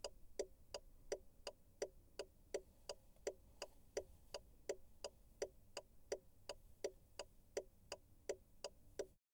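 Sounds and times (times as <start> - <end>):
car indicator ticking inside a car: 0.0 - 3.4, 4.0 - 9.2.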